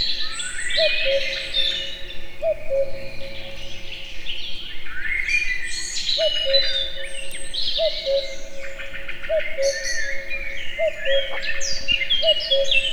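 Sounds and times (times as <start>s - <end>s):
common cuckoo calling in a forest in Hungary: 0.0s - 4.7s, 6.2s - 12.9s
dense chorus of songbird trills and chirps in a forest: 0.0s - 12.9s.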